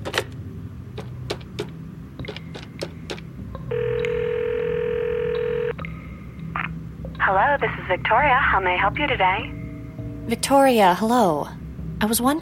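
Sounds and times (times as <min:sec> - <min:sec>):
short clicks and beeps of a phone number dialed from a computer system in an office: 0:03.7 - 0:05.8
speech: 0:07.4 - 0:09.6, 0:10.3 - 0:12.4.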